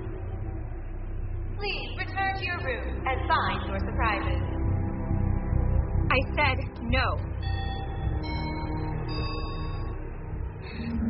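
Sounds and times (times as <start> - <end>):
steady low rumble: 0.0 - 11.0
speech: 6.2 - 7.6
chime tones ringing: 7.4 - 10.0.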